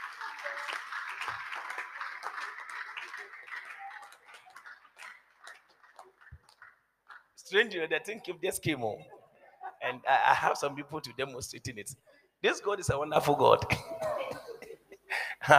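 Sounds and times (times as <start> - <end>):
audience clapping: 0.0 - 7.4
speech: 7.5 - 9.2, 9.9 - 14.1.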